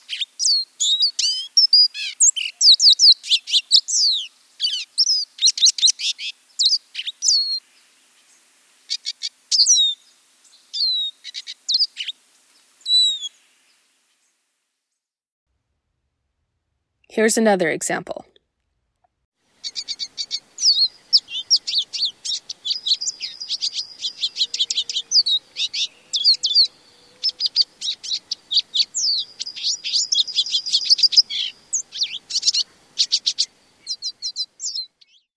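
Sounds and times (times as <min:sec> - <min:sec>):
small songbird giving call notes and twittering: 0:00.0 - 0:14.4, 0:19.6 - 0:35.3
speech: 0:17.2 - 0:18.2.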